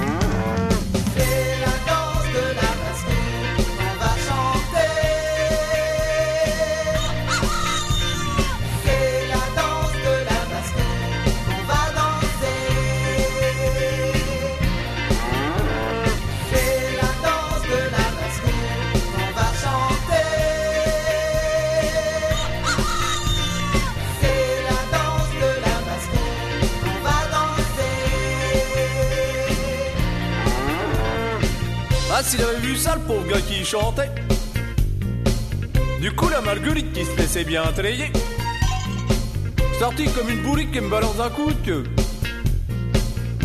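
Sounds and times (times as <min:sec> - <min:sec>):
cow mooing in a farmyard: 0:00.0 - 0:01.0, 0:15.1 - 0:16.4, 0:30.2 - 0:31.7
busy steady music track with dense instruments: 0:00.0 - 0:43.4
speech: 0:33.7 - 0:34.1, 0:36.7 - 0:38.3, 0:39.8 - 0:42.0.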